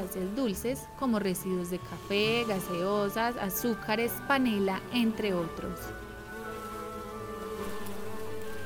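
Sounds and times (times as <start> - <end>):
stingless Melipona bees buzzing at their nest: 0.0 - 8.6
speech: 0.1 - 6.1.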